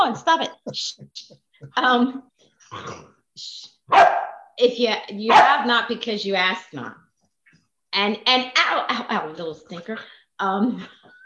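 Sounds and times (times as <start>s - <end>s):
speech: 0.1s - 7.0s, 7.9s - 11.1s
female dog barking: 3.9s - 4.5s, 5.3s - 5.7s.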